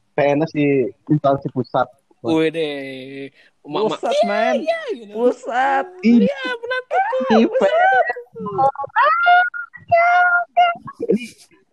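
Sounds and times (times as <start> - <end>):
speech: 0.2 - 11.7
man shouting loudly in a raised strained voice: 3.9 - 8.0
laughter: 3.9 - 9.4.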